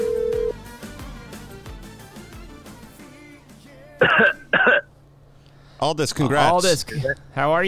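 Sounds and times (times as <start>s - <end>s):
dial tone beep: 0.0s - 0.5s
person coughing: 4.0s - 4.9s
speech: 5.8s - 7.6s.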